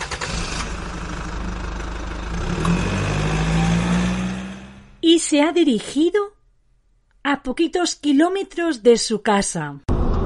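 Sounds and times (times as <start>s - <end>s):
car engine starting and idling: 0.0s - 5.0s
speech: 5.1s - 6.4s, 7.3s - 9.9s.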